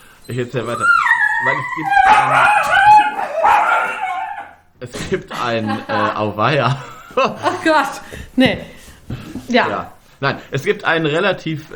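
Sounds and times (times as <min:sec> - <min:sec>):
speech: 0:00.3 - 0:03.7, 0:04.8 - 0:11.7
dog barking and yipping: 0:00.3 - 0:04.6
laughter: 0:05.0 - 0:08.2.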